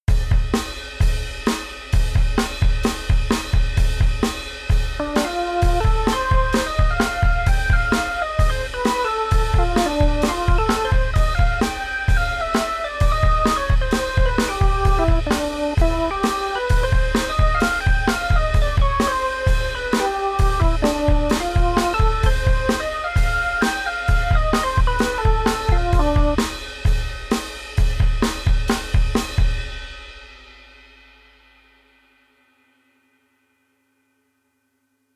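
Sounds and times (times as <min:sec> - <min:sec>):
big drum: 0:00.0 - 0:30.5.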